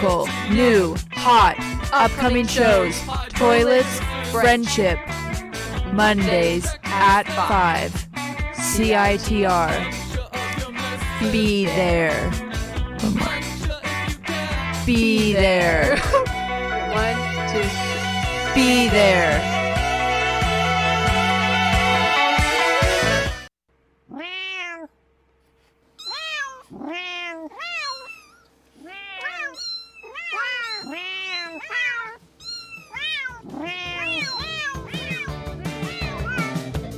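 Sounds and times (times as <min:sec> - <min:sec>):
speech: 0:00.0 - 0:05.3, 0:05.9 - 0:08.0, 0:08.6 - 0:10.0, 0:11.2 - 0:12.4, 0:13.0 - 0:13.4, 0:14.9 - 0:16.2, 0:18.6 - 0:19.6
music: 0:00.0 - 0:23.5, 0:33.9 - 0:36.9
cat meowing: 0:24.1 - 0:25.0, 0:26.0 - 0:36.7.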